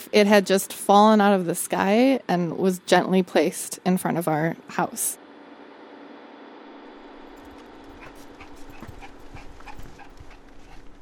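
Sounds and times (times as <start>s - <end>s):
speech: 0.1s - 5.2s
basset hound and blue heeler mix panting: 7.1s - 11.0s.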